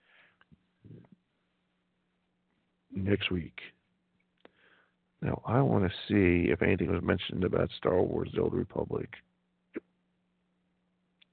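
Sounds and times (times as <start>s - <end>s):
speech: 3.0s - 3.8s, 5.2s - 9.9s
hiccup: 9.7s - 10.0s.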